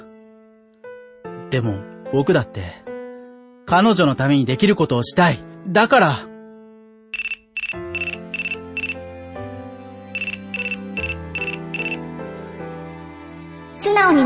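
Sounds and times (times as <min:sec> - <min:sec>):
speech: 0:01.5 - 0:02.9, 0:03.7 - 0:06.3
mobile phone email notification ringtone with electronic chirps and synthesized melody: 0:07.2 - 0:09.0, 0:10.2 - 0:12.0.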